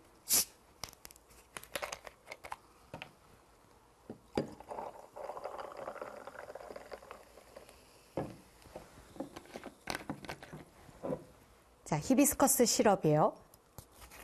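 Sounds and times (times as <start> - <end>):
sparkling water poured into a glass: 4.3 - 8.2
speech: 11.9 - 13.4.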